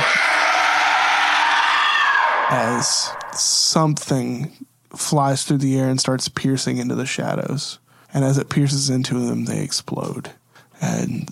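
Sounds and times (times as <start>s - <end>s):
loud sustained shrill scream with a bleating edge: 0.0s - 3.5s
speech: 2.5s - 11.3s.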